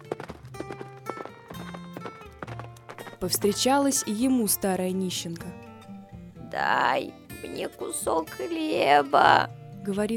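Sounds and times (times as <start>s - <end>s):
horse hooves clip-clopping: 0.0s - 4.2s
speech: 3.2s - 5.6s, 6.6s - 10.1s.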